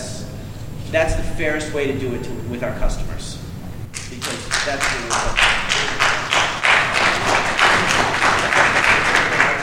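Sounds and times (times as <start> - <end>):
speech: 0.9 - 3.4, 4.2 - 6.1
audience clapping: 3.9 - 9.6.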